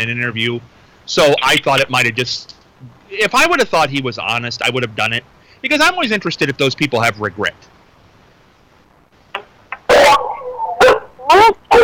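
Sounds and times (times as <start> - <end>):
speech: 0.0 - 7.7
dogs barking: 9.9 - 11.8.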